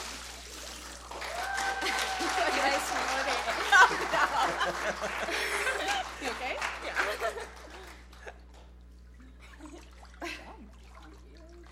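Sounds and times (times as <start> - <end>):
water splashing during baptism immersion: 0.0 - 1.2, 9.0 - 11.7
water sloshing and trickling drips: 0.0 - 1.3, 8.4 - 11.7
laughter: 1.6 - 8.5
speech: 4.7 - 7.7.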